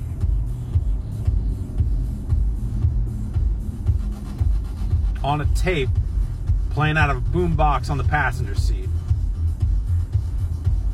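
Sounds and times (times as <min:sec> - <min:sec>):
road noise inside a moving car: 0:00.0 - 0:10.9
speech: 0:05.2 - 0:06.0, 0:06.8 - 0:09.0.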